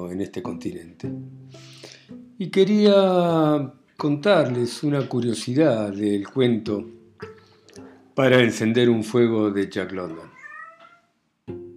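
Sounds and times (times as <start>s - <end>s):
speech: 0.1s - 1.8s, 2.4s - 7.0s, 8.2s - 10.3s
cat meowing: 10.0s - 11.2s.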